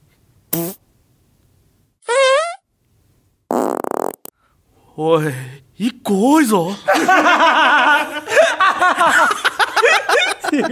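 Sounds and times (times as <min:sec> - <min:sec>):
farts: 0:00.5 - 0:00.8, 0:02.0 - 0:02.6, 0:03.5 - 0:04.3
speech: 0:05.0 - 0:10.7
laughter: 0:06.7 - 0:10.7.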